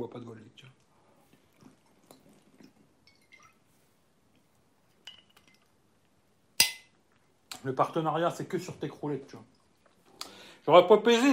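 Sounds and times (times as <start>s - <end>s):
tap water poured into a glass: 1.3s - 3.8s
glass clinking: 5.0s - 5.7s, 6.6s - 7.0s
speech: 7.6s - 9.6s, 10.6s - 11.3s.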